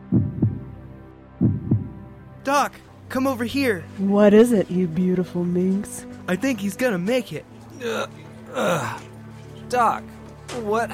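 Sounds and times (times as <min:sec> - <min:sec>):
heartbeat thumping in a slow lub-dub rhythm: 0:00.0 - 0:00.8, 0:01.4 - 0:02.1
speech: 0:02.4 - 0:09.1, 0:09.7 - 0:10.9.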